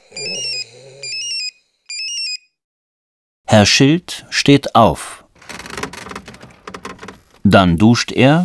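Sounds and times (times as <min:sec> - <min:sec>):
mobile phone ringing with a bright electronic melody: 0:00.2 - 0:02.5
speech: 0:03.5 - 0:05.2, 0:07.4 - 0:08.4.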